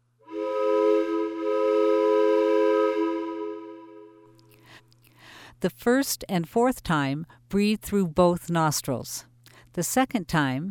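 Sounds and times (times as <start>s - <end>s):
train whistle blasts: 0.3s - 4.3s
speech: 5.6s - 10.7s.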